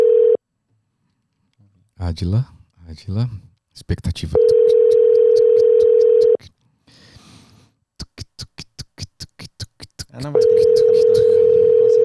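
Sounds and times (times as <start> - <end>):
steady telephone tone: 0.0 - 0.4, 4.4 - 6.4, 10.4 - 12.0
speech: 2.0 - 4.8, 10.2 - 11.0
unanswered phone call ringback pulses: 4.4 - 6.4, 10.4 - 12.0.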